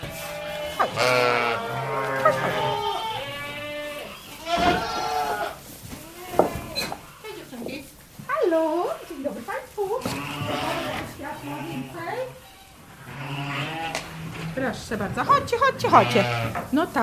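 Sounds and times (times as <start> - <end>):
Romanov, Polish Lowland and Welsh black-nosed sheep bleating on a farm: 0.0 - 7.5, 10.0 - 14.6, 15.7 - 16.6
rustling: 0.0 - 17.0
speech: 0.8 - 1.4, 14.9 - 17.0.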